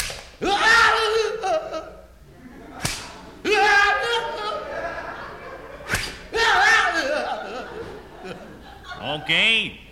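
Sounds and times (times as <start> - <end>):
whip lashes cracking against a man's oil-covered back: 0.0 - 0.4, 2.8 - 3.2, 5.9 - 6.3
laughter: 0.9 - 9.7
speech: 9.2 - 9.8.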